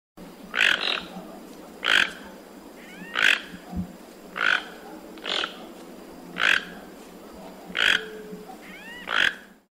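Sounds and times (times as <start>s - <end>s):
toucan calling: 0.5s - 9.6s.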